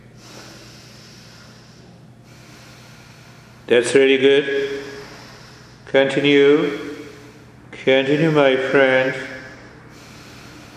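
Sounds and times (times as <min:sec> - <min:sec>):
deep breathing in and out through belly and chest: 0:00.0 - 0:10.7
speech: 0:03.7 - 0:04.9, 0:05.9 - 0:06.9, 0:07.8 - 0:09.3.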